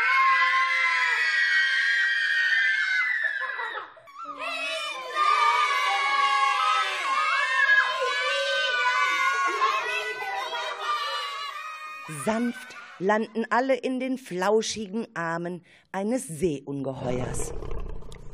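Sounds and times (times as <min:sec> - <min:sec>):
group of children screaming while flying through the air: 0:00.0 - 0:13.0
speech: 0:12.2 - 0:17.7.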